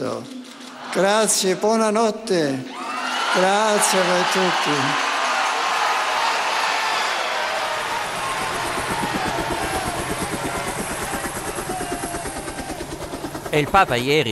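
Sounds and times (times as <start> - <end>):
speech: 0.0 - 5.1, 13.5 - 14.2
helicopter flying away carrying the pope: 5.9 - 14.2.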